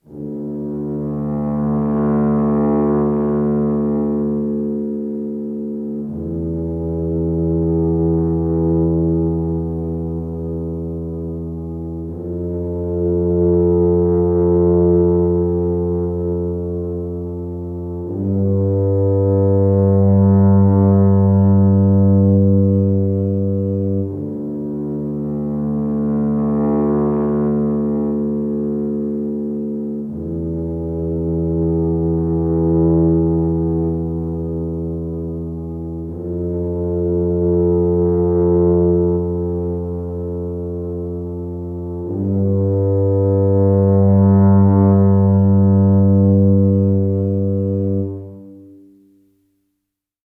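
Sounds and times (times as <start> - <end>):
tuba playing in D minor at 80 BPM: 0.0 - 49.1.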